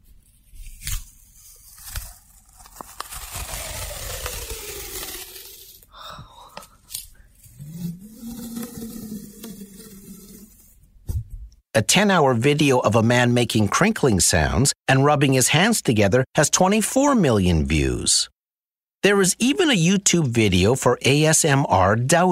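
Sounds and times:
adhesive tape tearing as an ASMR trigger: 0:00.5 - 0:05.9
speech: 0:11.8 - 0:18.4, 0:19.0 - 0:22.3.

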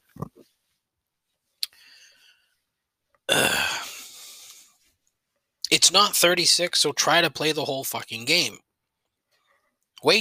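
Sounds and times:
speech: 0:00.2 - 0:00.4, 0:05.8 - 0:08.6, 0:10.0 - 0:10.1
person burping into a microphone: 0:03.3 - 0:04.1.

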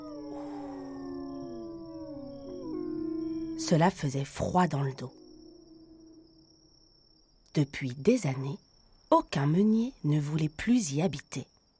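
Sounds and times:
long mournful dog howl: 0:00.0 - 0:04.0
speech: 0:03.6 - 0:05.2, 0:07.6 - 0:11.5.

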